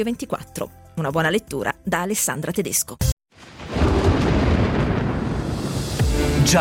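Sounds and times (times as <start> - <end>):
speech: 0.0 - 3.1
thunder rumbling: 3.4 - 6.4.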